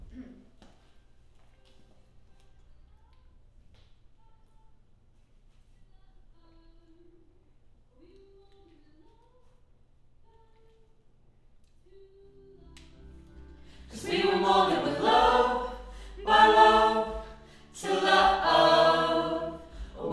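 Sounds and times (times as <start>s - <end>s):
choir singing: 13.5s - 20.1s.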